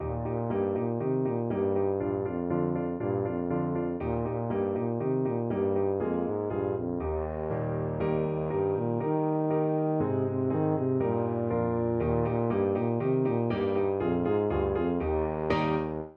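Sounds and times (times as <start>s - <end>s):
tuba playing a folk tune: 0.0s - 16.1s.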